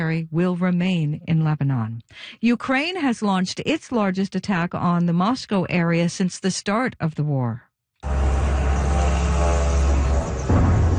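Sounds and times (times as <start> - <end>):
speech: 0.0 - 8.2
attack drone propeller engine droning: 8.0 - 10.9.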